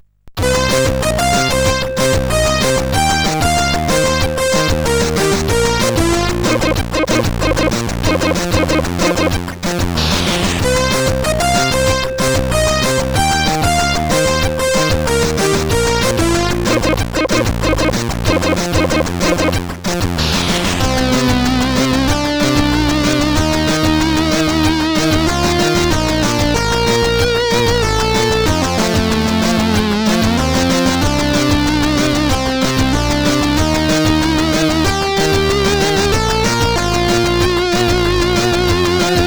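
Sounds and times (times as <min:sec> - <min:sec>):
tracker music on a CSG8580R5 sound chip: 0:00.4 - 0:39.2.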